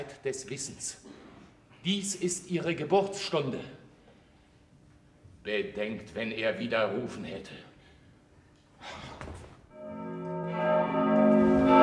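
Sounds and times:
speech: 0.0s - 1.2s, 1.8s - 3.8s, 5.4s - 7.7s
church bell ringing: 9.7s - 11.8s.

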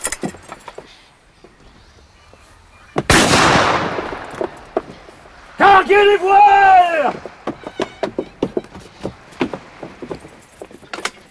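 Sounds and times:
rifle shot fired at a port as an answering signal: 3.1s - 4.7s
speech: 5.9s - 7.3s.

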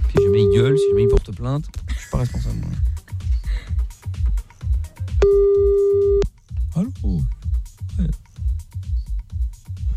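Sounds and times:
bass-heavy music beats: 0.0s - 9.9s
steady loud telephone ringing tone while a call is placed: 0.2s - 1.1s, 5.2s - 6.2s
speech: 0.6s - 3.0s, 6.8s - 7.3s.

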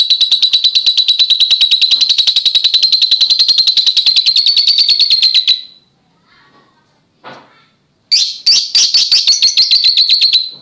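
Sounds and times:
oriental magpie-robin giving high stuttered notes and sharp chirps: 0.0s - 5.9s, 8.1s - 10.6s.

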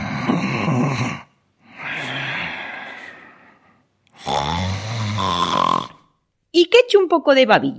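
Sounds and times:
voice imitating rasping throaty snoring: 0.0s - 2.6s, 4.2s - 6.1s
speech: 1.0s - 1.3s, 6.9s - 7.7s.

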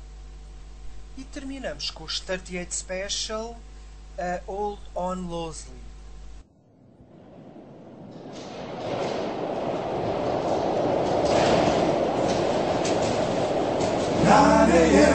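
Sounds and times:
speech: 1.2s - 5.9s
New York subway train rumbling and rattling: 6.8s - 15.1s.

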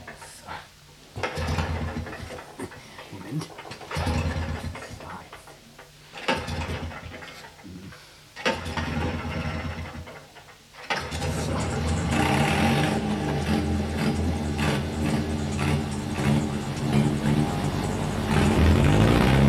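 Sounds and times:
vehicle engine starting and revving on a sloping field: 1.2s - 2.5s, 3.5s - 5.0s, 6.1s - 7.6s, 8.4s - 19.4s.

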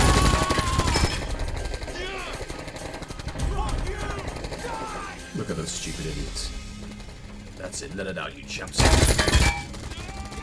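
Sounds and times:
gunfire in a dubbed film scene: 0.0s - 10.4s
speech: 7.8s - 9.4s.

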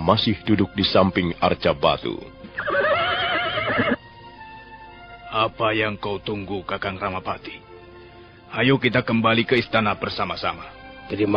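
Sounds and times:
speech: 0.0s - 2.7s, 5.3s - 7.6s, 8.5s - 11.3s
horse neighing: 2.5s - 4.0s.

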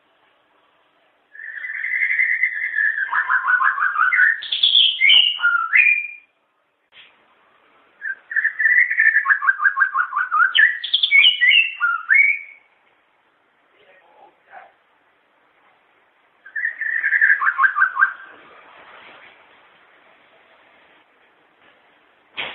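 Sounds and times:
long-tailed shrike song of warbled chattering notes and whistles: 1.3s - 6.3s, 8.0s - 12.7s, 16.4s - 18.3s.

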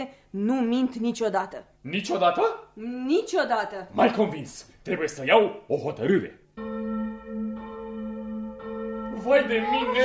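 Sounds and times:
speech: 0.0s - 6.8s, 9.2s - 10.0s
church bells ringing for a wedding: 6.6s - 10.0s.

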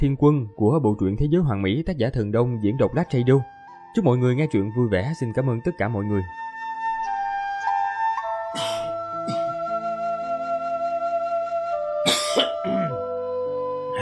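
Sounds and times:
speech: 0.0s - 6.5s
soft steady musical backing: 0.0s - 14.0s
person coughing from a wheezy seasonal winter cough: 8.6s - 9.5s, 12.1s - 13.0s.

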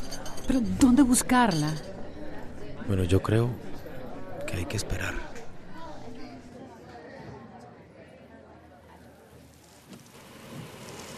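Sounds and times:
speech: 0.5s - 2.0s, 2.9s - 3.7s, 4.5s - 5.3s
rain falling: 10.0s - 11.1s.

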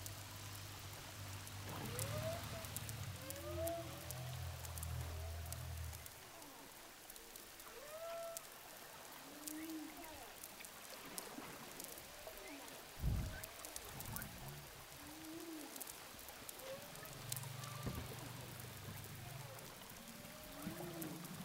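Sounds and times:
crackling underwater noise: 0.0s - 21.4s
humpback whale song units recorded underwater with a hydrophone off Saint-Gilles, Réunion: 1.7s - 6.7s, 7.6s - 8.6s, 9.2s - 10.1s, 14.2s - 15.9s, 16.5s - 21.4s.

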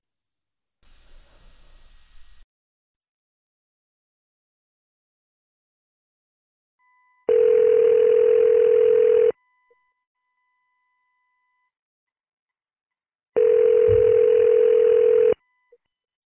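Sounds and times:
telephone line tone on an outgoing call: 7.2s - 9.4s, 13.4s - 15.4s.

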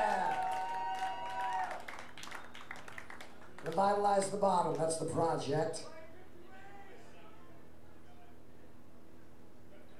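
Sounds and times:
audience applause: 0.0s - 4.1s
speech: 3.6s - 6.0s.

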